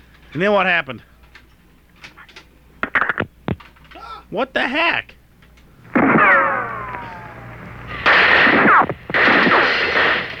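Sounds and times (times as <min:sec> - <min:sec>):
speech: 0:00.3 - 0:01.1, 0:04.3 - 0:05.2
loud dense gunfire bursts: 0:05.9 - 0:10.3.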